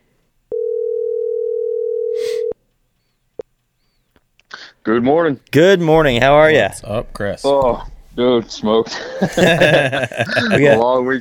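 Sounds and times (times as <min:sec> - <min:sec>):
loud steady telephone dial tone while placing call: 0:00.5 - 0:02.6
speech: 0:04.8 - 0:11.1
laughter: 0:08.8 - 0:10.9.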